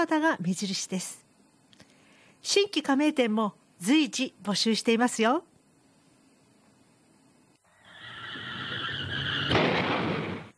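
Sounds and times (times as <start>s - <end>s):
speech: 0.0s - 1.2s, 2.4s - 5.5s
tires screeching in a long rising squeal: 7.9s - 9.6s
loud car crash impact: 9.0s - 10.5s.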